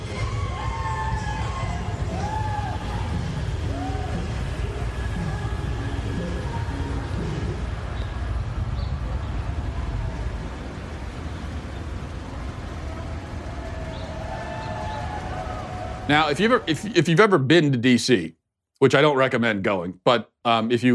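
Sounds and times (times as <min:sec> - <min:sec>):
wailing sirens: 0:00.0 - 0:17.0
dense jammed city street traffic engine rumble: 0:00.0 - 0:18.2
speech: 0:16.1 - 0:20.9.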